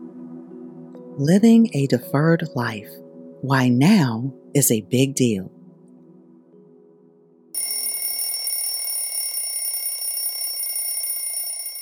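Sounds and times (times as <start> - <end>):
speech: 1.2 - 5.6
alarm clock bell ringing: 7.6 - 11.8.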